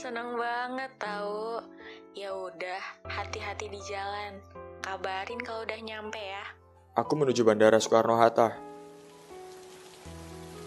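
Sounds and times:
speech: 0.0 - 8.7
steady rain falling: 8.7 - 10.6.

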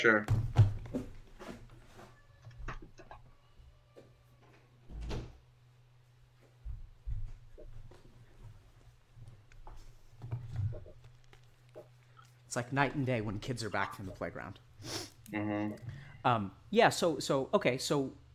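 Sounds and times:
speech: 0.0 - 1.0, 12.5 - 18.2
knocking thuds: 0.3 - 1.2
door being handled and shut: 4.9 - 5.4.

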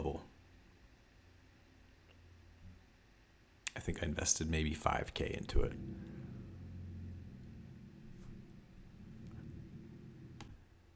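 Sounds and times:
speech: 3.8 - 6.2
car with loud broken exhaust starting and rumbling: 5.0 - 10.6
faint clicks: 5.5 - 10.6.

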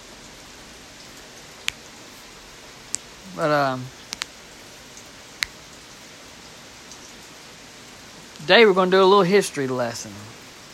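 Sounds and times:
soft rain falling outdoors on a chilly day: 0.0 - 10.7
sharp drip or tap: 2.9 - 5.8
speech: 3.3 - 4.0, 8.5 - 10.4.

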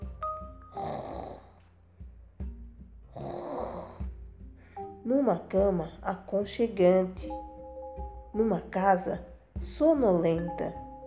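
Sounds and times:
grandmother snoring: 0.7 - 1.6, 3.1 - 4.1
low-pitched breathing: 0.7 - 2.2, 3.1 - 5.0
speech: 5.1 - 7.5, 8.4 - 10.8.

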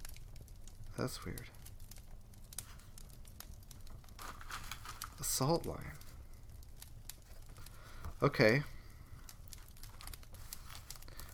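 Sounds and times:
speech: 1.0 - 1.6, 5.2 - 6.0, 8.2 - 8.8
paper crinkling as a business card is handled: 2.4 - 11.3.

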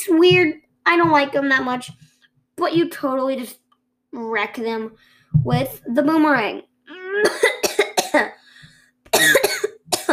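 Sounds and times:
speech: 0.0 - 2.0, 2.6 - 7.5
person with an itchy throat coughing: 7.2 - 8.4, 9.1 - 10.1.

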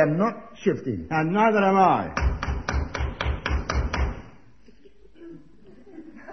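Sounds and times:
speech: 0.0 - 2.3
faint noise: 0.0 - 6.3
firm knocking on a door: 2.2 - 4.3
laughter: 4.6 - 6.3.

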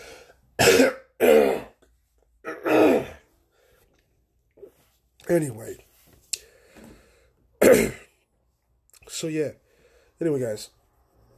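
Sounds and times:
person coughing: 0.6 - 1.8, 2.5 - 3.2, 7.6 - 8.2
speech: 5.3 - 5.8, 9.2 - 9.6, 10.2 - 10.8.

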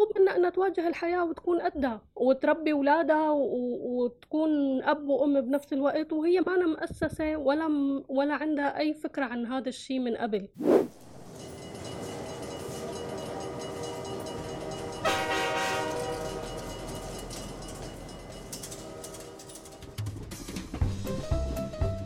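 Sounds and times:
speech: 0.0 - 11.0
train rumbling along: 10.8 - 21.0
train wheels clacking on rail joints: 11.0 - 20.8
long sustained train horn blast: 14.8 - 17.1, 18.5 - 20.0.

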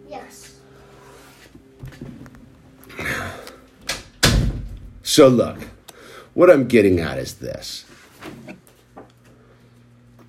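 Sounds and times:
speech: 0.0 - 0.6, 5.2 - 5.8, 6.4 - 7.9
low room hum: 0.0 - 10.2
door being pushed shut: 3.9 - 5.0.

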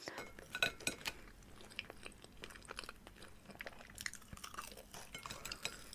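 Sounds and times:
cutlery and dishes clinking: 0.0 - 1.2, 4.9 - 5.9
chewing and crunching: 0.1 - 5.9.

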